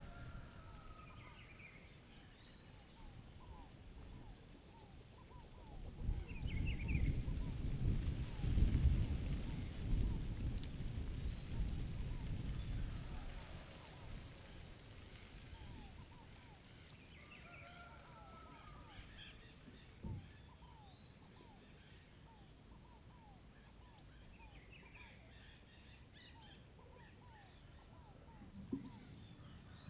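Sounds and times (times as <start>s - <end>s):
rooster crowing: 0.0s - 1.6s, 17.2s - 19.1s
birds: 0.0s - 29.8s
wind in a rural setting in the morning: 0.0s - 29.8s.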